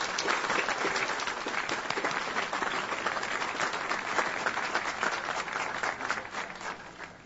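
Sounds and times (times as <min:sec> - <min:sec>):
large audience applauding at a celebration: 0:00.0 - 0:07.2.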